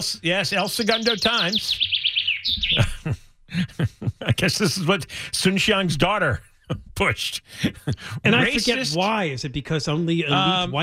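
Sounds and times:
birds chirping and tweeting: 0.0 - 4.8
speech: 0.0 - 10.8
laughter: 2.6 - 5.2, 6.2 - 9.0.

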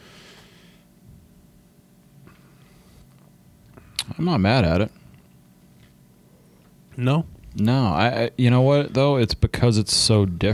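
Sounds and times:
heavy breathing into a microphone: 0.0 - 0.9
speech: 4.2 - 5.0, 7.0 - 10.5.

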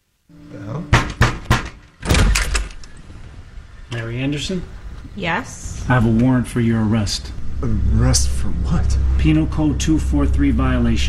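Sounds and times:
faint low hum: 0.3 - 11.0
heavy thuds and pounding against a door: 0.9 - 2.4
speech: 4.0 - 11.0.

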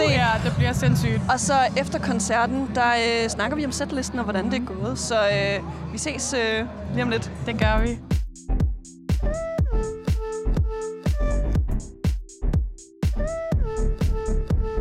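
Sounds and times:
speech: 0.4 - 8.2
booming bass line: 7.6 - 14.7
steady thumping kick drum: 7.6 - 14.7
electronic dance music from a festival bar: 7.7 - 14.7
crisp hi-hats: 7.9 - 13.4.

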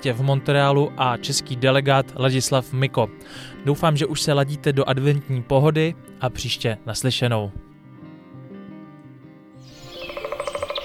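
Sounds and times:
speech: 0.0 - 7.7
birds chirping in bright repeated calls: 9.7 - 10.8.

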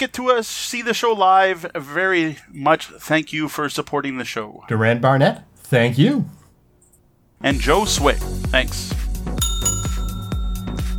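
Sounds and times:
speech: 0.0 - 6.4, 7.4 - 9.0
loud bell ringing in rapid strikes: 9.4 - 10.9.

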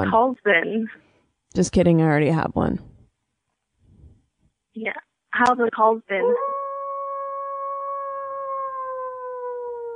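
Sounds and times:
speech: 0.0 - 2.9, 4.8 - 6.6
person imitating a wolf howl: 6.2 - 9.9.

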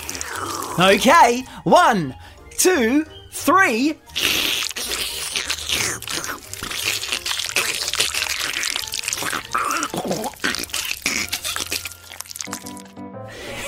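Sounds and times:
disgusting slurpy squelching mouth noises: 0.0 - 1.0, 4.1 - 13.0
speech: 0.4 - 4.3.

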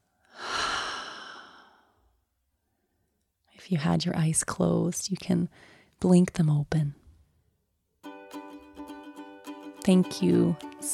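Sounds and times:
deep airy breath during a guided yoga relaxation: 0.2 - 2.1
speech: 3.7 - 7.0, 9.8 - 10.9.

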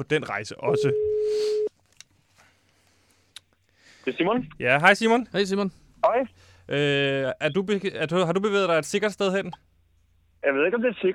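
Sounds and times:
speech: 0.0 - 1.7, 4.0 - 9.7, 10.4 - 11.1
ringback tone of an outgoing phone call: 0.7 - 1.7.

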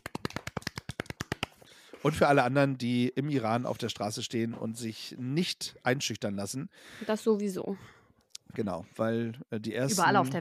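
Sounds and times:
hand clapping from one or a few people: 0.0 - 2.2
speech: 2.0 - 10.3.

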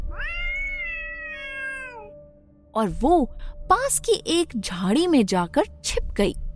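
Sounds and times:
cat screeching in pain: 0.0 - 2.1
speech: 2.8 - 6.4.

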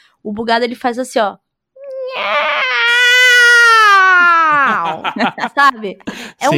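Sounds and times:
speech: 0.2 - 1.4, 2.1 - 2.6, 5.0 - 6.5
person imitating a cat's pitiful meow: 1.8 - 4.9
laughter: 4.2 - 6.5.

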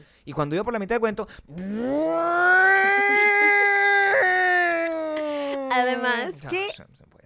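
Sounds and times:
speech: 0.0 - 3.1, 5.8 - 7.2
person imitating a small newly bought blender: 1.5 - 6.4.

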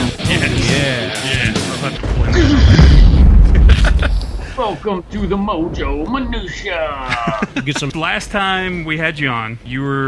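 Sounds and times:
laughter: 0.2 - 4.8, 6.9 - 8.3
booming explosion sound effect with low rumble: 2.0 - 7.3
speech: 4.6 - 10.0.

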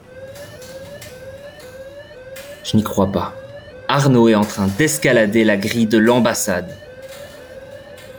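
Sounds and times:
electronic alarm wailing in rising whoops: 0.0 - 8.1
speech: 2.7 - 6.9.

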